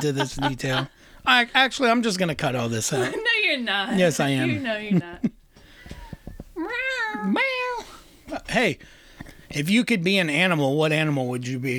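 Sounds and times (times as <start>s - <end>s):
laughter: 0.0s - 1.6s, 2.9s - 5.3s
speech: 0.0s - 5.4s, 7.2s - 7.5s, 8.5s - 11.7s
soft knocks: 5.6s - 6.6s
cat meowing: 6.6s - 8.0s.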